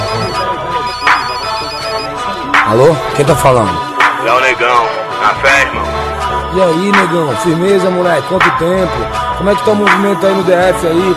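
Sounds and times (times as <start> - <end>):
mobile phone ringtone playing an electronic melody: 0.0 - 2.6
speech: 2.7 - 11.1.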